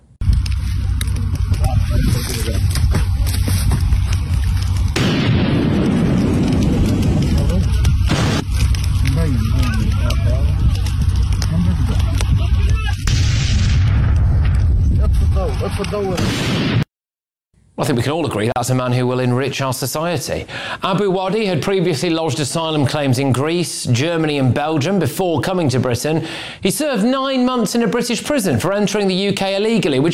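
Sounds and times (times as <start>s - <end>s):
constant loud roar of harsh crackling noise: 0.2s - 16.4s
pipe bomb explosions in a video: 4.6s - 16.9s
speech: 17.9s - 30.1s.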